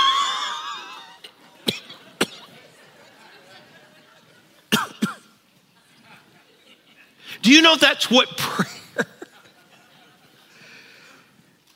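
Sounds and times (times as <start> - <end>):
laughter: 0.4 - 4.7, 5.8 - 7.2, 8.4 - 10.9
speech: 1.7 - 2.0, 7.4 - 8.7
person imitating a sudden hacking cough: 4.7 - 5.2.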